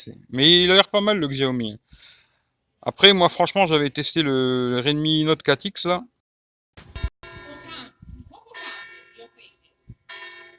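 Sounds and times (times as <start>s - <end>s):
speech: 0.0s - 2.2s, 2.8s - 6.1s
church bells ringing in resonant peals: 7.2s - 10.5s.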